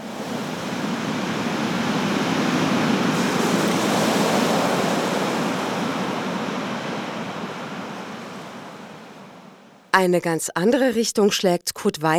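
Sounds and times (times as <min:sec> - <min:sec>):
sea waves as heard in a seashell: 0:00.0 - 0:09.5
speech: 0:10.0 - 0:12.1.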